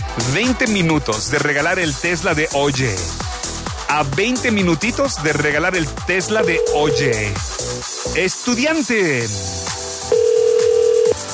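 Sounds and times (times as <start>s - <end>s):
speech: 0.2s - 3.3s, 3.9s - 9.6s
phone call cut-off electronic tone: 6.4s - 7.3s, 10.1s - 11.2s.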